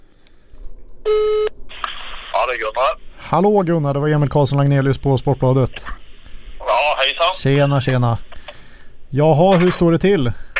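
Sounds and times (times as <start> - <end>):
ringback tone of an outgoing phone call: 1.1 - 1.5
speech: 2.4 - 6.0, 6.8 - 10.5.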